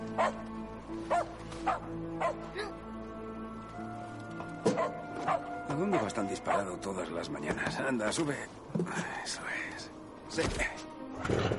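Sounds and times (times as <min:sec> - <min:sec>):
dog barking: 0:00.2 - 0:00.4, 0:01.1 - 0:02.4, 0:04.7 - 0:06.7
speech: 0:00.2 - 0:00.5, 0:01.1 - 0:02.9, 0:04.7 - 0:11.5.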